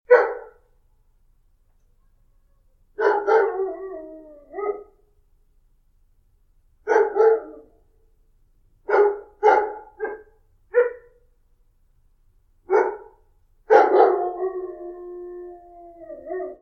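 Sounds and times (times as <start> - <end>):
dog barking: 0.1 - 0.7, 3.0 - 3.6, 4.6 - 5.0, 6.9 - 7.8, 8.9 - 11.2, 12.7 - 14.3.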